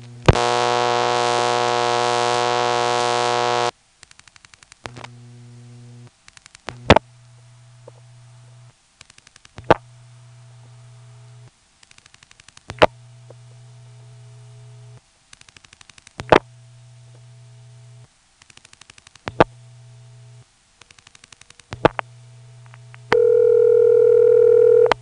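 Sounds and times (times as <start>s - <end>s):
loud buzzy telephone dial tone: 0.0s - 3.7s, 21.8s - 25.0s
low ringback tone of a telephone exchange: 23.1s - 25.0s.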